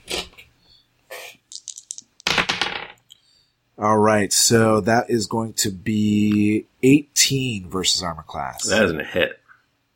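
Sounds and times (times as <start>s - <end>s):
two dice rattling and clattering across a hard surface: 1.5s - 3.0s
speech: 3.8s - 9.4s.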